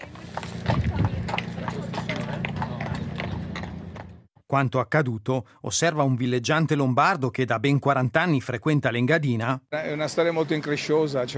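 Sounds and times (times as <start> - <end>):
horse hooves clip-clopping on a hard road: 0.0 - 4.3
speech: 4.5 - 11.3.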